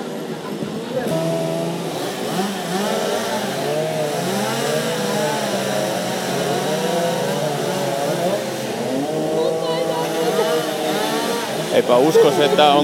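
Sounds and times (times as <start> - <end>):
laughter: 0.0 - 12.8
several chainsaws revving as they bite into wood: 0.0 - 12.8
speech: 11.9 - 12.8.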